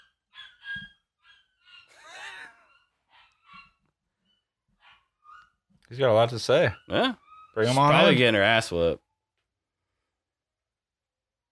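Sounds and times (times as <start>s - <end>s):
puppy whiny cry: 0.0s - 3.8s, 6.7s - 8.2s
puppy barking and yapping: 0.0s - 3.9s, 4.8s - 5.6s
speech: 5.9s - 9.0s.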